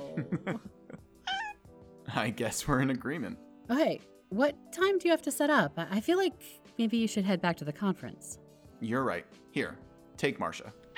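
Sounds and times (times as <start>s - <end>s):
speech: 0.2s - 0.8s, 2.1s - 10.8s
female cat meowing: 1.2s - 1.7s.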